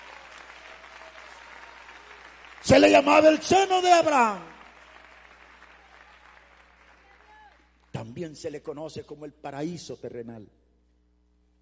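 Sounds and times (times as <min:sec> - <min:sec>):
church congregation clapping in praise: 0:00.0 - 0:08.2
speech: 0:02.6 - 0:04.5, 0:08.2 - 0:10.6.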